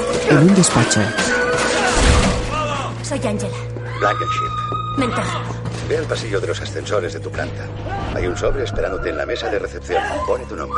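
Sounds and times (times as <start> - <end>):
speech: 0.3 - 1.7, 3.1 - 10.7
heavy thud and crash: 1.8 - 2.7.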